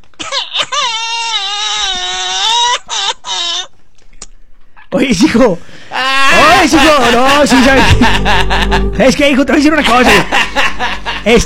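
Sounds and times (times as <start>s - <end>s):
baby crying: 0.2s - 3.8s
speech: 4.9s - 11.4s
laughter: 6.2s - 11.4s.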